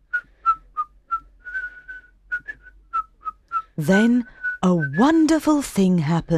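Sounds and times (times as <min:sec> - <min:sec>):
old man whistling softly: 0:00.0 - 0:04.6
speech: 0:03.8 - 0:06.3.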